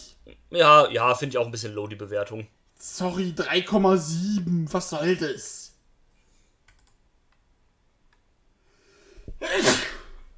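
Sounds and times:
speech: 0.2 - 5.6
person sneezing: 9.4 - 10.2.

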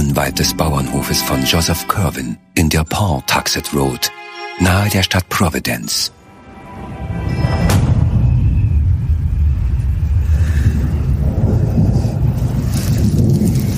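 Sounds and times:
speech: 0.2 - 6.2
distant thunder rumbling with crackling bursts: 6.8 - 13.7
faint wash of rain or wind: 8.2 - 13.7.

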